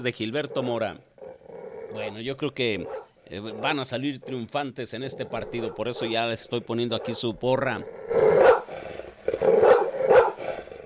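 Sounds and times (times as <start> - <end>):
speech: 0.0 - 1.1, 1.9 - 8.2
dogs barking: 0.3 - 2.1, 2.7 - 10.8.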